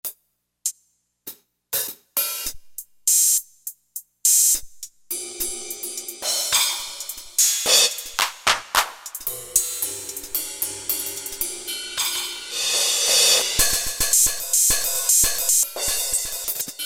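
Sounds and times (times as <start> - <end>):
cymbal from Roland SC-880 factory rhythm set: 4.5 - 16.8
claps from Roland SC-880 factory rhythm set: 8.2 - 9.1.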